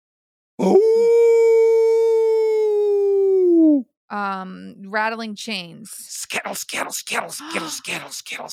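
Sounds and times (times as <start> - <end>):
speech: 0.6 - 1.1, 4.1 - 8.5
human voice imitating an eerie demon dog howl: 0.6 - 3.9.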